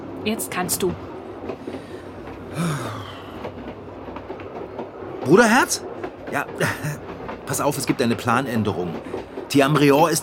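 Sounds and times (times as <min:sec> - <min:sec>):
moving railway carriage interior rumbling: 0:00.0 - 0:10.2
speech: 0:00.2 - 0:03.2, 0:05.2 - 0:10.2.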